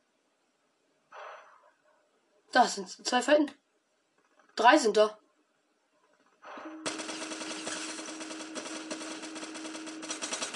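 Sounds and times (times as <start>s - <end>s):
speech: 2.5s - 3.6s, 4.6s - 5.2s
rapid automatic gunfire in a video game shootout: 6.8s - 10.5s.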